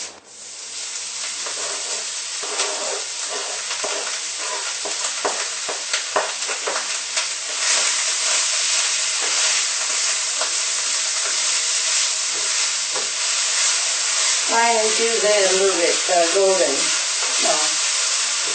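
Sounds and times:
mushroom frying in hot oil: 0.0s - 18.5s.

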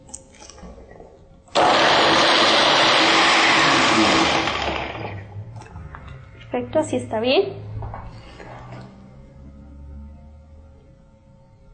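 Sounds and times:
blender liquefying food: 1.6s - 5.4s
speech: 6.6s - 7.7s.

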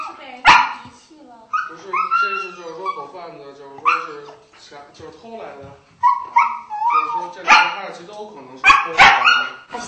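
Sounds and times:
dogs barking frantically: 0.0s - 0.9s, 1.5s - 3.1s, 3.8s - 4.3s, 6.0s - 7.9s, 8.6s - 9.7s
dog whining: 1.5s - 3.1s, 3.8s - 4.2s, 6.0s - 7.7s.

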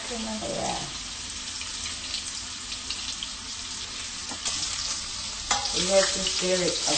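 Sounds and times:
vegetarian soup ingredients frying in a pan: 0.0s - 6.9s
speech: 0.1s - 1.0s, 5.8s - 6.9s.

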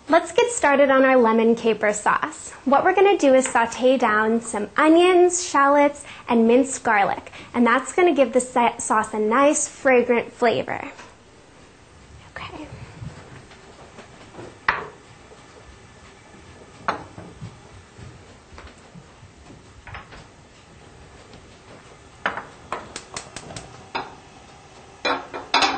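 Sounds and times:
speech: 0.1s - 11.0s
kitchenware clanks and clicks: 25.1s - 25.7s.

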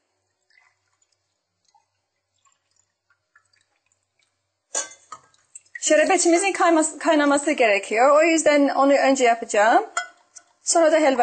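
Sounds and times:
water poured into a cooking pot: 0.0s - 7.0s
soft clinks and drips of utensils: 4.7s - 5.3s
speech: 5.8s - 10.0s, 10.7s - 11.2s.

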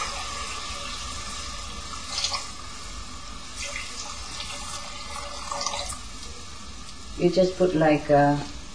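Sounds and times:
filtered water pouring into a pot: 0.0s - 6.1s
speech: 7.2s - 8.6s.

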